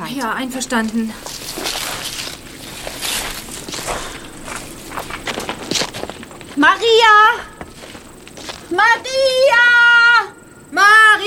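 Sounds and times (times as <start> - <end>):
footsteps of people walking at a steady pace: 0.0 - 9.9
speech: 0.1 - 1.4, 8.7 - 9.6.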